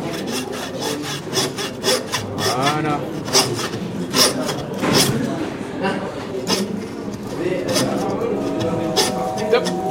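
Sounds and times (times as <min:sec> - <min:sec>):
hand saw blade cutting through wood: 0:00.0 - 0:05.4, 0:06.3 - 0:09.8
speech: 0:02.8 - 0:03.1.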